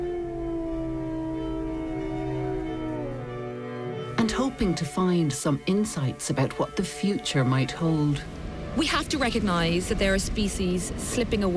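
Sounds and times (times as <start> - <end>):
wolf howling: 0.0 - 4.2
speech: 4.4 - 11.5.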